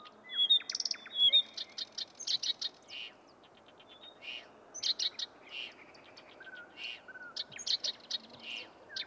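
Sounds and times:
Blyth's reed warbler song with clicking notes and clear whistles: 0:00.0 - 0:09.0.

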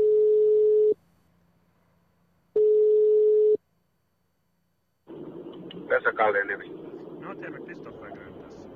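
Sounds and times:
long steady telephone ringback tones: 0:00.0 - 0:01.0, 0:02.6 - 0:03.6
man speaking Finnish over a muffled phone line: 0:05.9 - 0:08.6.

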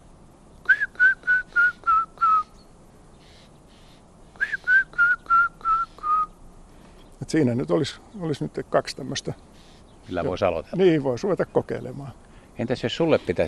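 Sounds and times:
person whistling imitation of grey-headed woodpecker call: 0:00.6 - 0:02.6, 0:04.4 - 0:06.3
speech: 0:07.3 - 0:13.4.

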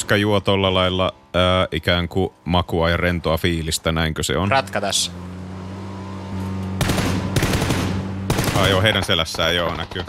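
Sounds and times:
speech: 0:00.0 - 0:05.4, 0:08.6 - 0:10.0
gunfire in rapid loud bursts of sharp cracks: 0:06.8 - 0:09.1.

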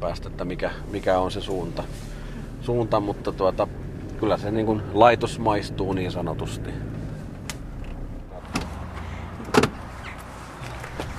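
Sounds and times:
speech: 0:00.0 - 0:06.9
door shutting: 0:08.4 - 0:08.8, 0:09.5 - 0:09.8.

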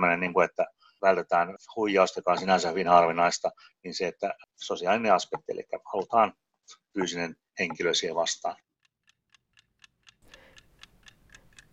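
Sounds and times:
speech: 0:00.0 - 0:08.7
chess clock ticking: 0:07.0 - 0:11.7.

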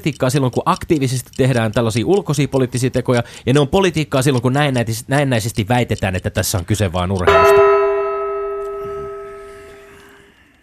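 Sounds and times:
speech: 0:00.0 - 0:07.7
gong strike ringing: 0:07.3 - 0:10.2.

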